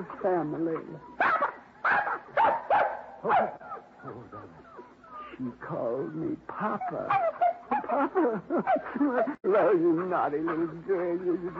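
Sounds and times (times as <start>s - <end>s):
speech: 0.0s - 1.3s, 3.2s - 4.6s, 5.4s - 11.5s
newborn puppies yapping and whimpering: 0.7s - 5.4s, 6.7s - 9.4s
laughter: 7.7s - 11.5s.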